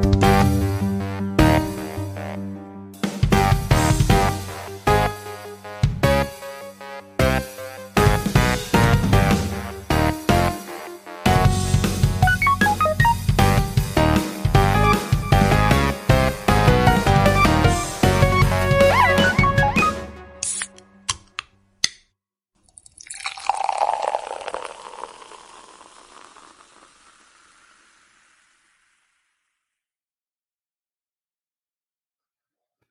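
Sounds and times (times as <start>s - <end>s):
podcast theme song music: 0.0s - 21.4s.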